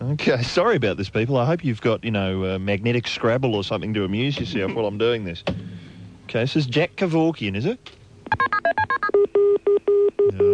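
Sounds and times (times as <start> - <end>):
faint low hum: 0.0 - 10.5
speech: 0.2 - 5.7, 6.3 - 8.5
telephone keypad dialing tones: 8.3 - 10.5.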